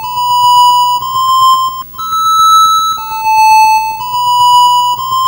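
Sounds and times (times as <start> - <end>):
Atari 2600 eight-bit chiptune synth effects: 0.1 - 5.1.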